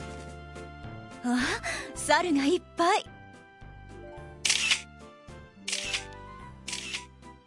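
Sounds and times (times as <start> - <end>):
speech: 1.2 - 3.1
mechanical camera shutter clicking: 4.4 - 4.9, 5.7 - 7.1.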